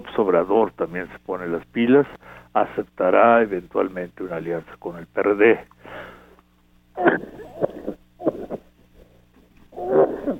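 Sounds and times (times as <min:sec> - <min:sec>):
speech: 0:00.0 - 0:06.1, 0:07.0 - 0:07.4
person having a coughing fit with harsh raspy wheezy coughs: 0:07.0 - 0:08.7.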